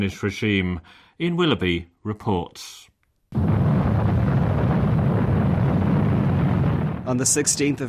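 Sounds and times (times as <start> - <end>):
speech: 0.0 - 3.5, 7.1 - 7.8
controlled demolition explosion at a train station: 3.3 - 7.8
train station building collapse rumbling: 3.4 - 7.8.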